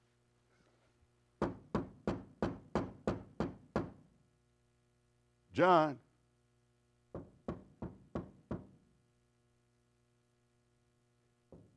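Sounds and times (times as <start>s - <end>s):
firm knocking on a door: 1.4s - 4.0s, 7.1s - 8.8s, 11.5s - 11.7s
speech: 5.6s - 6.0s.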